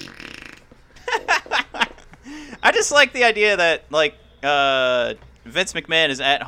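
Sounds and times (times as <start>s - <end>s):
fart noise from a fart buddy: 0.0s - 0.9s
laughter: 1.0s - 2.8s
speech: 2.3s - 6.4s.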